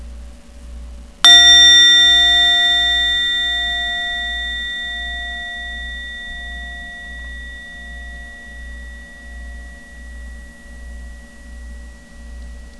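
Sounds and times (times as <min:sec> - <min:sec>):
medium Japanese rin gong ringing: 0:01.3 - 0:12.7.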